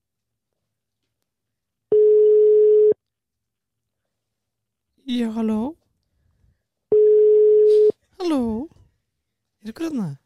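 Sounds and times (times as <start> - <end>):
unanswered telephone call ringing tone: 1.9 - 3.0, 6.9 - 7.9
speech: 5.1 - 5.8, 8.2 - 8.8, 9.6 - 10.2.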